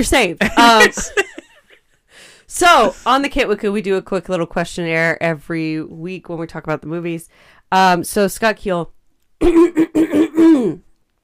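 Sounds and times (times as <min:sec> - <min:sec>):
speech: 0:00.0 - 0:01.3, 0:02.5 - 0:10.9
laughter: 0:00.4 - 0:01.8
person clearing throat of a stuck milkshake: 0:09.4 - 0:10.9.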